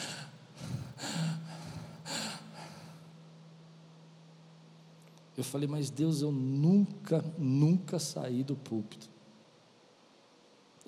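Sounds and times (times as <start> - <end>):
person imitating strained gasping for breath: 0.0 - 3.1
speech: 5.4 - 9.1.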